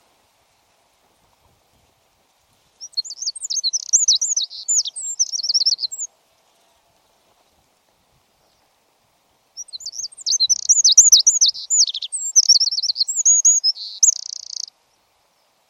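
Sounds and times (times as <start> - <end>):
bird twittering song: 2.8 - 6.1, 9.6 - 14.7.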